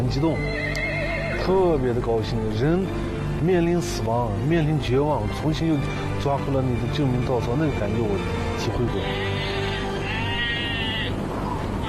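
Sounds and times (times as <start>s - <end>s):
speech: 0.0s - 0.6s, 1.4s - 9.6s
sheep bleating in a flock struggling through deep snow: 9.0s - 11.2s.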